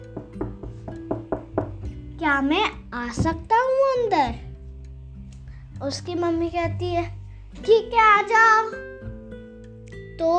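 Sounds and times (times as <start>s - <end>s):
sharp knocks on a door: 0.1s - 2.0s
speech: 2.2s - 4.4s, 5.8s - 8.9s, 10.2s - 10.3s.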